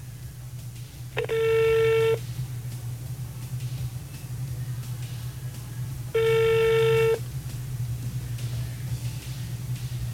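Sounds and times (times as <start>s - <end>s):
steady low hum: 0.0s - 10.1s
phone ringback tones on an outgoing call: 1.2s - 2.2s, 6.2s - 7.2s.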